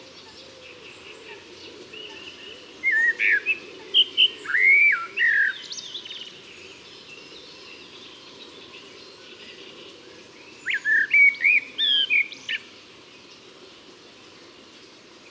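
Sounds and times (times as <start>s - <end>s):
common blackbird Turdus merula singing: 0.0s - 8.8s, 10.5s - 12.7s
quiet hiss: 0.0s - 15.2s.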